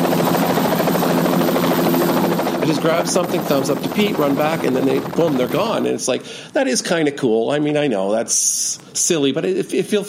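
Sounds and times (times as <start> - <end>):
helicopter landing beside a police training academy: 0.0 - 6.4
speech: 2.7 - 10.0.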